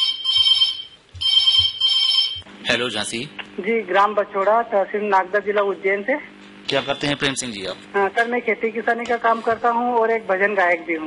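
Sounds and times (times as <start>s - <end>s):
telephone ringing in a radio studio with a bright electronic trill: 0.0s - 2.5s
speech: 2.7s - 11.0s.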